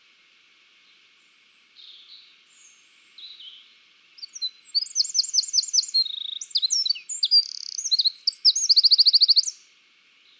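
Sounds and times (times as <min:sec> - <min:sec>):
Eurasian wren song, Troglodytes troglodytes: 0:00.8 - 0:10.3.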